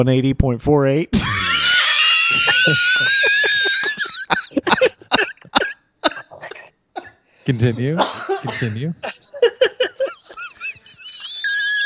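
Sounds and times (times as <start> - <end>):
speech: 0.0 - 1.3, 2.6 - 3.6, 7.5 - 9.1
laughter: 1.2 - 5.6, 7.6 - 11.8
man screeching high-pitched: 1.2 - 6.6, 10.7 - 11.8.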